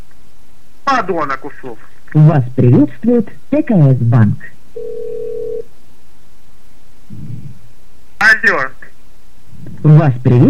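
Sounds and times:
speech: 0.9 - 5.1, 8.3 - 8.8, 9.8 - 10.4
short low-pitched telephone tone after a call-centre operator hangs up: 4.8 - 5.6.

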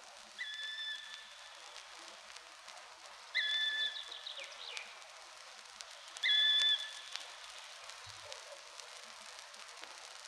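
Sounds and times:
steady hiss: 0.0 - 10.2
black woodpecker whistled call in the forest: 0.4 - 1.2, 3.4 - 4.2, 6.2 - 7.0.

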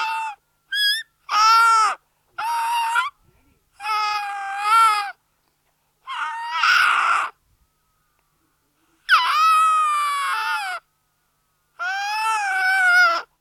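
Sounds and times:
young seal uttering strained bleating wails: 0.0 - 3.1, 3.8 - 5.2, 6.1 - 7.4, 9.1 - 10.8, 11.8 - 13.3.

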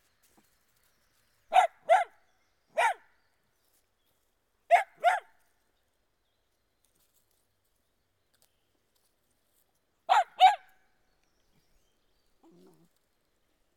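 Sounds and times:
Dachshund barking outdoors: 1.5 - 2.2, 2.8 - 3.0, 4.7 - 5.3, 10.1 - 10.7.

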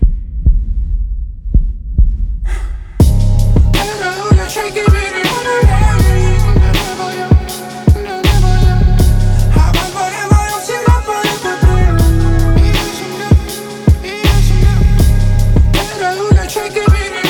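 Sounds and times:
heartbeat: 0.0 - 17.1
music: 3.0 - 17.2.

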